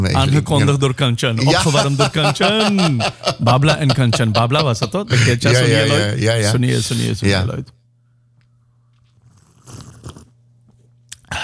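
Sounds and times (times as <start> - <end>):
speech: 0.0 - 7.8
laughter: 1.4 - 6.2
loud slurping of coffee: 9.0 - 10.4.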